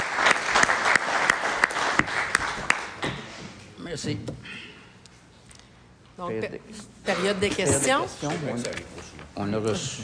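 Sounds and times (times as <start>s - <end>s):
audience applauding at a village council meeting: 0.0s - 3.0s
speech: 4.0s - 4.7s, 6.2s - 10.0s.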